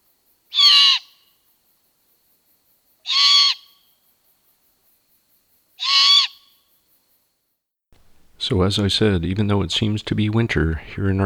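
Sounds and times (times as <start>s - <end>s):
young great horned owl begging screech: 0.5s - 1.2s, 3.0s - 3.8s, 5.8s - 6.5s
speech: 8.5s - 11.2s.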